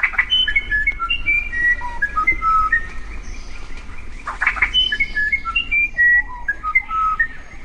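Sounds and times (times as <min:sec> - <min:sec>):
South American musician wren whistled song: 0:00.0 - 0:07.6.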